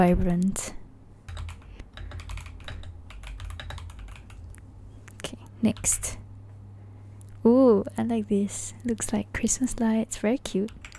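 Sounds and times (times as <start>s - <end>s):
speech: 0.0s - 0.8s, 5.6s - 6.2s, 7.4s - 10.8s
soft low hum: 0.0s - 10.9s
rapid typing on an RGB computer keyboard: 1.3s - 6.0s, 10.5s - 10.9s.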